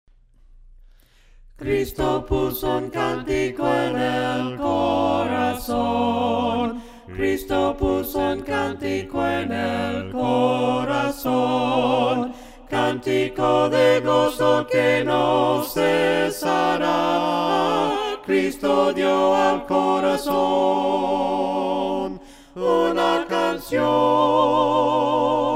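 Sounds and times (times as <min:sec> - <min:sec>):
voices singing an a cappella hymn: 0:01.6 - 0:25.5.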